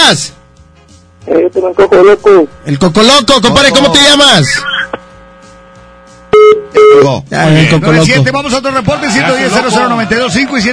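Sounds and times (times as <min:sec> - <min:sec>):
speech: 0:00.1 - 0:00.4, 0:01.2 - 0:04.7, 0:06.7 - 0:10.7
brief beep of a WhatsApp call connecting: 0:06.4 - 0:07.0.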